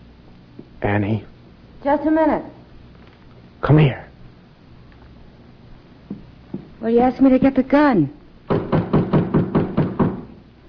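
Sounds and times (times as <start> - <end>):
speech: 0.8 - 2.6, 3.6 - 4.0, 6.8 - 8.2
firm knocks on a back door: 6.1 - 6.7, 8.5 - 10.4.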